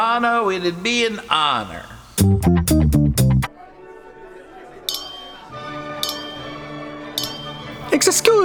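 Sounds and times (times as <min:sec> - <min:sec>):
speech: 0:00.2 - 0:03.0, 0:08.0 - 0:08.4
glasses clinking at a party: 0:07.2 - 0:07.6.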